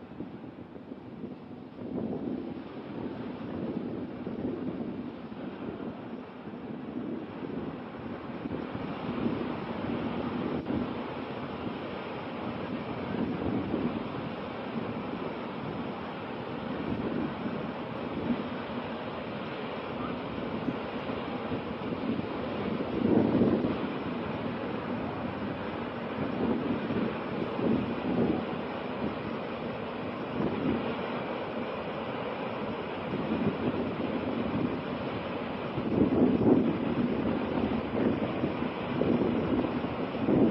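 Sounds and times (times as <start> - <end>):
floodwater rushing down off a mountain: 0.0 - 40.4.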